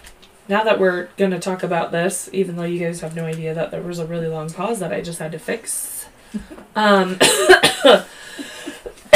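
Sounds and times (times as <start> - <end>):
speech: 0.5 - 8.2
person coughing harshly: 7.2 - 9.1.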